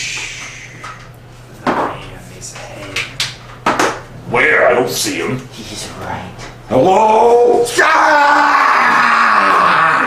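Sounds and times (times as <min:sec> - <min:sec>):
speech: 0:04.4 - 0:08.6
person yelling in a loud sustained screaming shout: 0:06.7 - 0:10.0.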